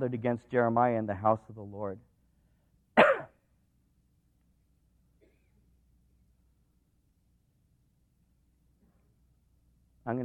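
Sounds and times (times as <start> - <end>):
speech: 0.0 - 2.1, 10.1 - 10.2
short harsh cough: 3.0 - 3.4, 5.2 - 5.6.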